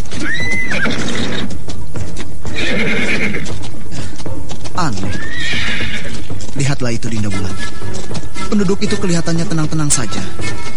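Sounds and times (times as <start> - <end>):
horse hooves stomping on snakes: 0.0 - 10.7
horse neighing: 0.1 - 1.6, 2.5 - 3.6, 5.0 - 6.3
speech: 6.8 - 8.0, 8.6 - 10.7.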